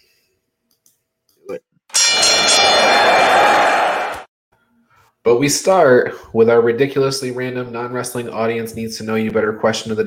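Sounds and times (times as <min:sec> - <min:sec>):
bell ringing with bright metallic clang: 0:01.9 - 0:04.1
speech: 0:05.2 - 0:10.0.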